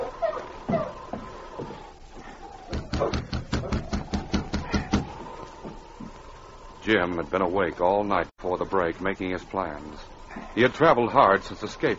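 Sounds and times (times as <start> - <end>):
knocking on the wooden door of an isolated cabin while snowing: 2.7 - 5.1
speech: 6.9 - 11.9.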